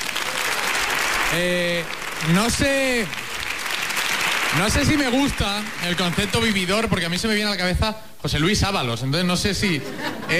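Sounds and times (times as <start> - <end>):
audience applause: 0.0 - 7.1
drawn-out vocal whoops and cheers: 0.2 - 1.2
speech: 1.3 - 3.2, 4.5 - 10.3
laughter: 9.8 - 10.3.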